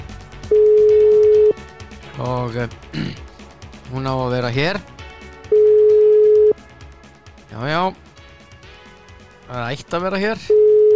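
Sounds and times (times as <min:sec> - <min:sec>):
telephone dial tone: 0:00.5 - 0:01.5, 0:05.5 - 0:06.5, 0:10.5 - 0:10.9
speech: 0:02.2 - 0:03.3, 0:03.9 - 0:04.9, 0:07.5 - 0:08.1, 0:09.5 - 0:10.6.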